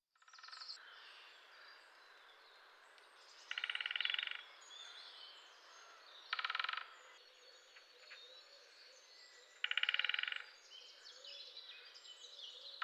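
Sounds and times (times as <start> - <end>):
songbirds singing: 0.2 - 12.8
steady outdoor background noise: 0.2 - 12.8
great spotted woodpecker drumming: 3.5 - 4.4, 6.3 - 7.0, 9.6 - 10.4.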